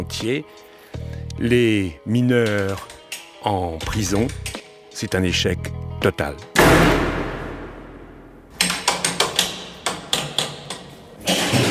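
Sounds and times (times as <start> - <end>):
speech: 0.1 - 6.9
prison window bars struck with a metal sounding bar: 8.5 - 11.7.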